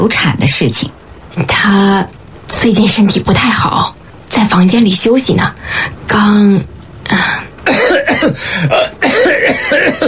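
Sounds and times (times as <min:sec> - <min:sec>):
speech: 0:00.0 - 0:10.0
man coughing to interrupt someone: 0:07.6 - 0:10.0.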